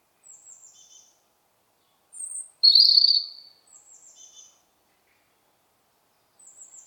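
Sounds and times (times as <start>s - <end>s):
European robin whistling: 2.6s - 3.5s.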